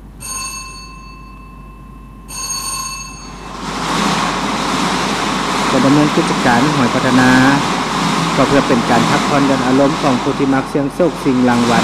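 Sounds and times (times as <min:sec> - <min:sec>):
bell-like ringing tones of a lottery drawing machine: 0:00.2 - 0:04.1
lottery drawing machine with six drums spinning, loud rushing whir: 0:03.2 - 0:11.8
speech: 0:05.8 - 0:07.8, 0:08.4 - 0:11.8.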